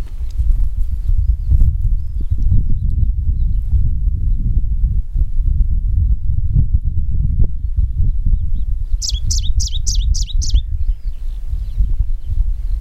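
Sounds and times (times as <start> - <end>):
steady low rumbling noise: 0.0 - 12.7
smoky warbler Phylloscopus fuligiventer delivering bright high notes: 9.0 - 10.6.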